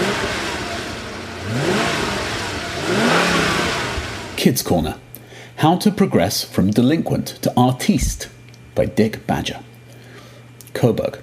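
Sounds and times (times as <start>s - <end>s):
6.75-litre twin-turbocharged V12 car engine revving: 0.0s - 4.4s
speech: 4.4s - 5.0s, 5.6s - 9.7s, 10.8s - 11.2s.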